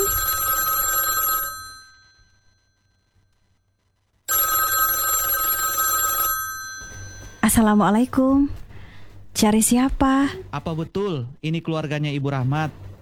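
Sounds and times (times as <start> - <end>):
telephone bell ringing with bright metallic trilling: 0.0 - 3.2, 4.3 - 7.8
speech: 7.5 - 8.6, 9.4 - 12.8.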